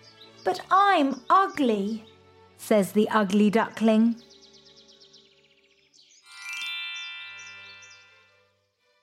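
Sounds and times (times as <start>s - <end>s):
birds chirping: 0.0s - 8.8s
speech: 0.4s - 4.3s
ringing musical chime with sweeping high tones: 6.2s - 8.5s.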